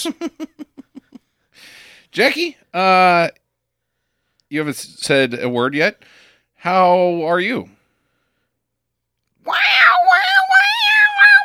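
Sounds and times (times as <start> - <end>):
speech: 0.0 - 0.6, 2.1 - 3.4, 4.5 - 7.8, 9.4 - 9.7
person imitating a screeching cat: 9.4 - 11.4.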